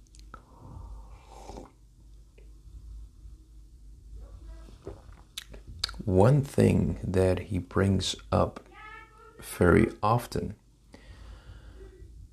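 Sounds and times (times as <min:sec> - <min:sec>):
person sipping coffee: 0:00.0 - 0:01.8
low steady hum: 0:00.0 - 0:12.3
breathing: 0:00.4 - 0:01.7, 0:10.9 - 0:12.1
speech: 0:06.1 - 0:08.7, 0:09.4 - 0:10.6.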